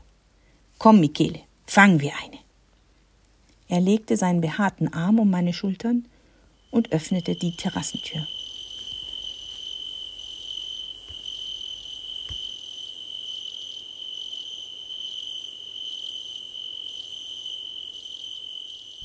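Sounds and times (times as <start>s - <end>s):
speech: 0.8s - 2.4s, 3.7s - 6.1s, 6.7s - 8.4s
crickets chirping: 6.1s - 19.0s.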